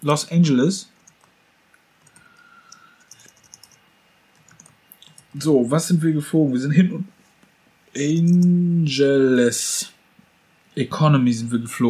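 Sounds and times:
speech: 0.0 - 1.0, 5.4 - 7.2, 7.9 - 10.0, 10.8 - 11.8
computer keyboard typing: 1.0 - 1.3, 2.0 - 3.8, 4.4 - 5.4, 8.2 - 8.5.

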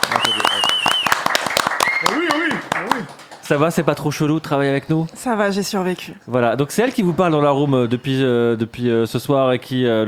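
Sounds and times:
voices calling out and cheering: 0.0 - 3.2
small group clapping for an intern: 0.0 - 4.1
speech: 3.5 - 10.0.

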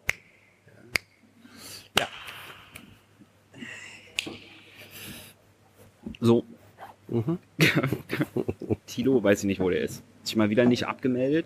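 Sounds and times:
finger snaps: 0.0 - 1.2, 1.9 - 3.0, 4.2 - 4.6
soft breathy noises: 1.4 - 5.9
speech: 6.2 - 6.5, 7.1 - 11.4
laughter: 7.6 - 8.9.

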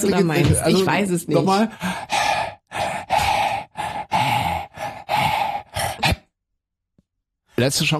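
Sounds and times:
speech: 0.0 - 2.1, 7.6 - 7.9
person panting rhythmically to mimic a song's beat: 0.0 - 6.4.

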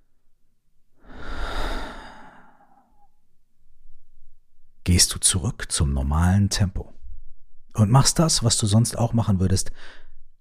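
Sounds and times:
deep breath in and out during a guided mindfulness break: 1.0 - 3.2, 9.7 - 10.3
speech: 4.9 - 7.0, 7.8 - 10.1.

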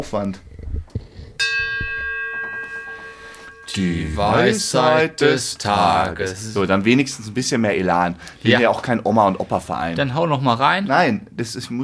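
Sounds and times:
speech: 0.0 - 0.5, 3.7 - 11.8
single bell struck ringing: 1.4 - 5.6.

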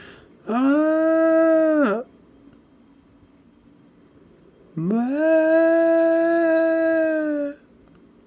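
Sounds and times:
voice imitating a child's wave-like wailing cry: 0.4 - 2.1, 4.8 - 7.6
speech: 0.5 - 0.8, 4.8 - 5.2.

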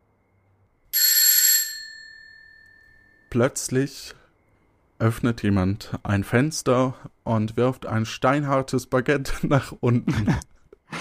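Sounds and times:
bright metallic bell ringing at night to wake someone: 1.0 - 3.4
speech: 3.3 - 4.2, 5.0 - 10.5
laughter: 9.6 - 10.9.

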